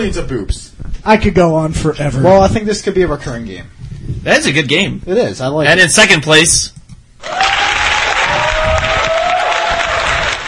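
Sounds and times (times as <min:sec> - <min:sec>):
speech: 0:00.0 - 0:07.4
crowd cheering and clapping: 0:07.2 - 0:10.4.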